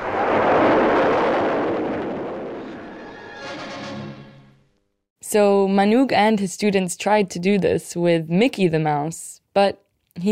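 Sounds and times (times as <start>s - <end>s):
Atlas missile blast-off at Lake Canaveral in Florida: 0.0s - 4.7s
speech: 5.3s - 10.3s.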